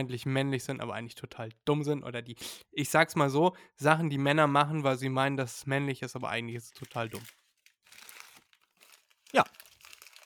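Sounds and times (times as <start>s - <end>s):
speech: 0.0s - 7.4s, 9.3s - 9.6s
dry crinkling and rustling of something being crumpled up: 6.7s - 10.2s.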